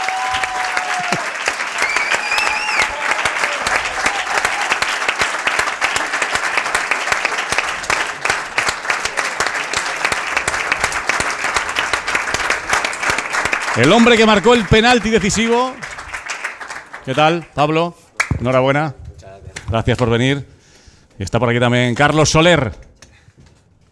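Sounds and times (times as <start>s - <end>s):
faint cheers: 0.0s - 4.9s
large audience applauding for two arriving players: 0.0s - 17.6s
speech: 1.1s - 1.3s, 13.8s - 15.8s, 17.0s - 19.0s, 19.7s - 20.5s, 21.2s - 22.8s
whistles: 1.8s - 2.9s.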